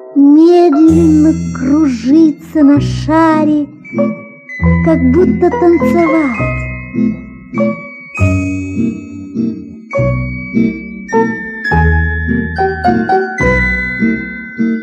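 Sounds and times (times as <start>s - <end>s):
speech: 0.2s - 7.8s
small golden bells on bracelets tinkling: 3.8s - 14.8s.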